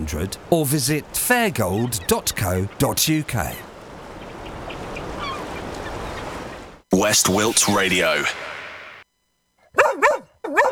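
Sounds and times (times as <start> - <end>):
speech: 0.0 - 3.7, 7.0 - 8.5
dog barking: 9.7 - 10.7.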